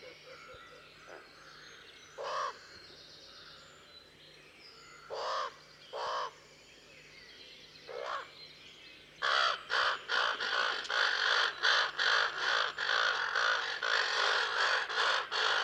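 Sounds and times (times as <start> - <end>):
common raven Corvus corax calling: 2.2 - 2.8, 5.1 - 6.4, 7.9 - 8.4, 9.2 - 15.6.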